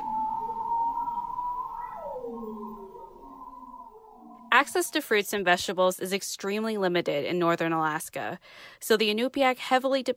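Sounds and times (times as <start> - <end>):
bearded seal underwater song: 0.0 - 5.4
speech: 4.6 - 10.1.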